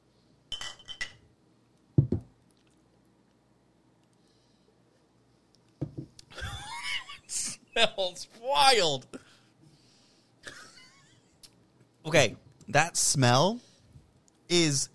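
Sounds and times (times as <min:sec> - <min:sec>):
glasses clinking in a toast: 0:00.5 - 0:01.2
dull knock: 0:02.0 - 0:02.3, 0:05.8 - 0:06.1
speech: 0:07.3 - 0:09.2, 0:12.1 - 0:13.7, 0:14.5 - 0:14.9.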